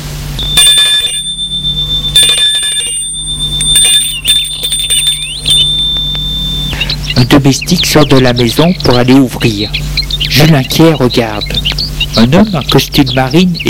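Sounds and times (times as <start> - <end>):
bell at a gate ringing: 0.4 - 6.9
speech: 7.4 - 13.6.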